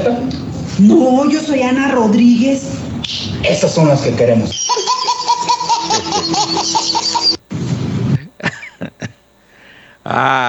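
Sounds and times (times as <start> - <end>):
speech: 0.0 - 4.9, 10.1 - 10.4
several people laughing loudly together: 4.6 - 7.4, 8.2 - 9.2.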